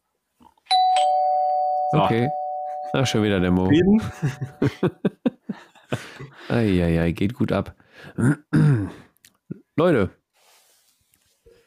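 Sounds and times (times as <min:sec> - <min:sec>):
doorbell chime: 0:00.7 - 0:04.9
speech: 0:01.9 - 0:09.0, 0:09.8 - 0:10.2
laughter: 0:03.9 - 0:06.7.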